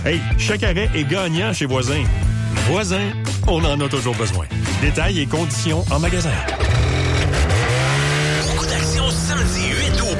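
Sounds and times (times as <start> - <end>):
speech: 0.0 - 6.6
snowmobile engines racing on water at a snowmobile water-racing championship: 6.6 - 10.1.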